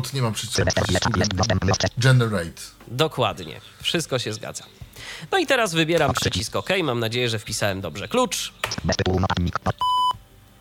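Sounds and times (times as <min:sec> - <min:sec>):
speech: 0:00.0 - 0:10.0
remote-access screen reader beep signalling a connection: 0:00.6 - 0:02.0, 0:06.0 - 0:06.4, 0:08.7 - 0:10.2.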